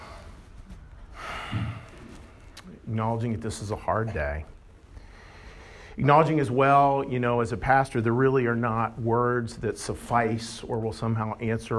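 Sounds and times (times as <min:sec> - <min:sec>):
group of people at a memorial service taking a big breath together: 0:00.0 - 0:02.6, 0:04.9 - 0:06.0
speech: 0:02.9 - 0:04.6, 0:06.0 - 0:11.7.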